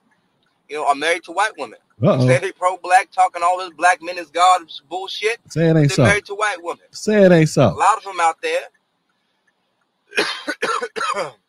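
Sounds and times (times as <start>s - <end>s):
speech: 0.7s - 8.8s, 10.1s - 11.4s
person coughing: 10.1s - 11.4s.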